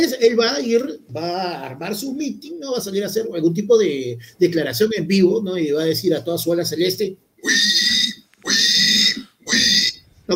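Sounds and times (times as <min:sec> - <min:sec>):
speech: 0:00.0 - 0:07.7
person imitating pig squealing oinks: 0:07.4 - 0:10.0.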